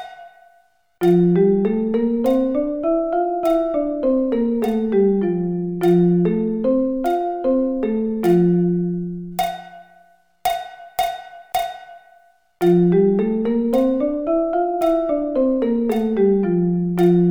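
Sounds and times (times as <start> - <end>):
F musical scale: 1.0 - 9.5, 12.6 - 17.2.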